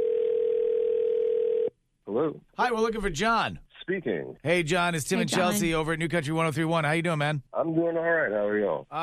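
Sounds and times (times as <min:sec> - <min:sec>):
telephone dial tone while placing a call: 0:00.0 - 0:01.7
speech: 0:02.2 - 0:09.0.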